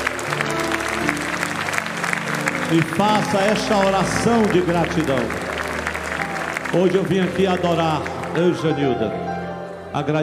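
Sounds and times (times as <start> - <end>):
large audience clapping: 0.0 - 9.0
faint sustained musical tones: 0.0 - 10.0
speech: 2.7 - 5.5, 6.7 - 9.3, 10.0 - 10.2.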